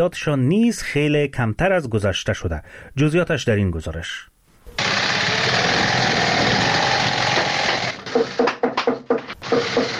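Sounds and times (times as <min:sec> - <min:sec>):
speech: 0:00.0 - 0:04.3
shoe factory sewing machines running: 0:04.8 - 0:08.5, 0:09.3 - 0:09.9
hammering in a shoe factory: 0:07.2 - 0:09.9.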